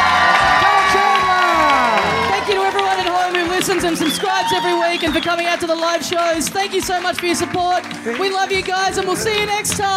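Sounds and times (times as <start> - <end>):
shouted voices: 0.0 - 5.2
live crowd cheering and whooping: 0.0 - 5.6
live crowd applause: 0.0 - 9.9
speech: 3.8 - 9.9.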